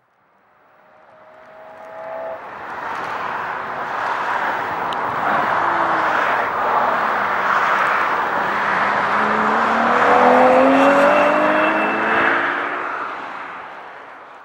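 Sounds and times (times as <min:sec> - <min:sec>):
race car engine revving during testing on a circuit: 0:00.8 - 0:03.2, 0:05.0 - 0:13.8.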